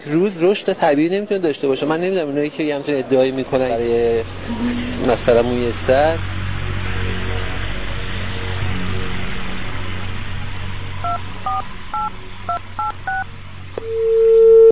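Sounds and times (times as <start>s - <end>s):
speech: 0.0s - 6.3s
constant low hum: 3.2s - 14.7s
one longer steady telephone tone: 11.0s - 14.7s
touch-tone beeps as a phone number is dialed: 13.8s - 14.7s.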